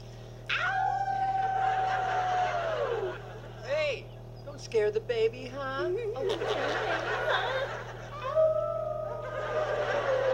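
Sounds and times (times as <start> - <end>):
low steady hum: 0.0 - 10.3
people howling like wolves: 0.5 - 3.3, 8.2 - 10.3
laughter: 1.4 - 3.7, 6.0 - 10.3
speech: 4.7 - 7.7.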